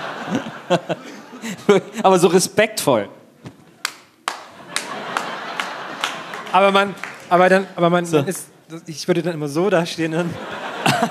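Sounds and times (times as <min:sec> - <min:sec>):
laughter: 0:00.0 - 0:02.0, 0:04.5 - 0:08.5, 0:10.1 - 0:11.0
speech: 0:00.3 - 0:03.2, 0:06.5 - 0:11.0
sharp hand claps: 0:03.8 - 0:07.3.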